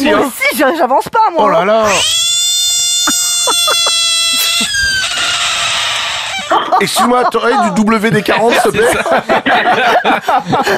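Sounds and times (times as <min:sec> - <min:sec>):
speech: 0:00.1 - 0:02.3, 0:03.7 - 0:03.9, 0:04.6 - 0:05.4, 0:06.5 - 0:10.7
frog crying out in raspy croaks: 0:01.8 - 0:06.9
laughter: 0:03.1 - 0:10.7.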